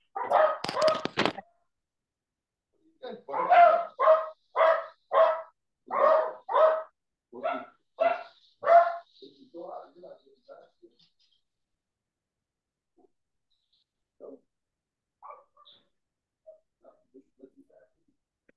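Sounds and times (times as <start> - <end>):
dogs barking while being put outside: 0.0 - 1.2, 3.3 - 9.1, 15.2 - 15.8.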